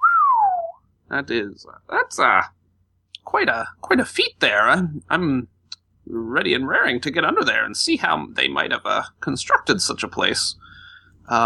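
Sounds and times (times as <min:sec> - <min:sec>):
impressed human wolf-whistle: 0:00.0 - 0:00.8
speech: 0:01.1 - 0:02.6, 0:03.2 - 0:05.5, 0:06.1 - 0:11.4.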